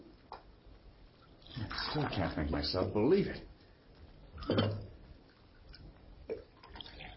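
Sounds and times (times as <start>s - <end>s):
coffee pouring into a cup: 1.2s - 3.4s, 4.0s - 7.1s
speech: 1.9s - 3.5s, 4.5s - 4.8s.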